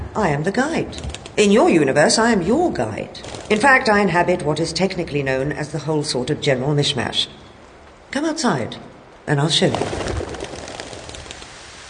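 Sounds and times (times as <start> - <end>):
speech: 0.2 - 7.4, 8.1 - 10.1
rain falling outdoors: 3.2 - 5.0, 9.1 - 11.8.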